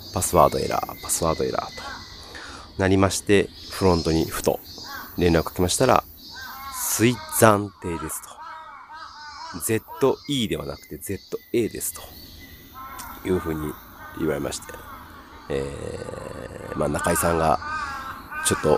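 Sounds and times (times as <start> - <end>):
speech: 0.1 - 2.0, 2.8 - 6.1, 7.0 - 8.4, 9.5 - 12.3, 13.2 - 14.9, 15.5 - 17.7, 18.4 - 18.7
crow cawing: 1.7 - 2.7, 4.8 - 10.9, 12.4 - 18.7.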